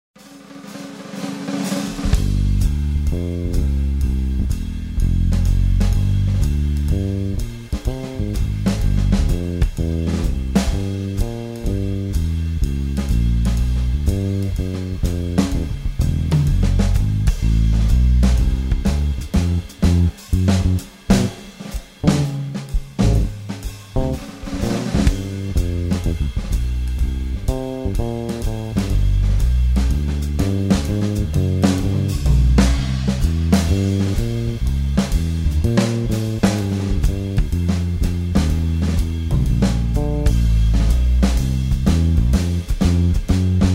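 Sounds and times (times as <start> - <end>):
organ backing track: 2.1 - 43.7.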